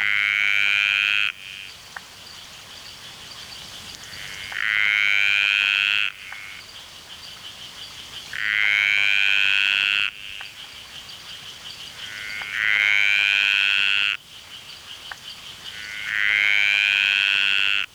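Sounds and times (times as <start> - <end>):
dainty green tree frog Litoria gracilenta rasping buzz calls: 0.0 - 1.8, 4.0 - 6.7, 8.3 - 10.8, 11.9 - 14.2, 15.0 - 17.9.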